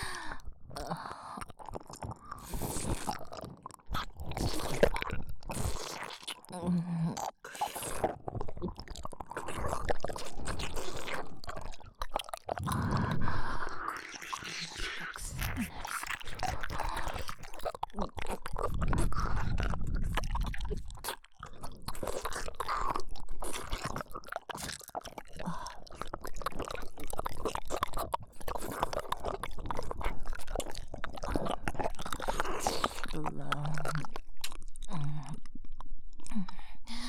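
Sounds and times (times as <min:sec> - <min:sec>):
wet sucking, slurping and chewing mouth sounds: 0:00.0 - 0:37.0.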